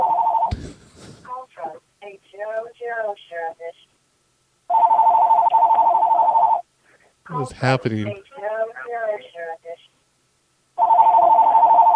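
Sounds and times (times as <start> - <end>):
telephone ringing with a loud steady electronic tone: 0.0 - 0.5, 4.7 - 6.6, 10.8 - 11.9
speech: 7.3 - 8.3.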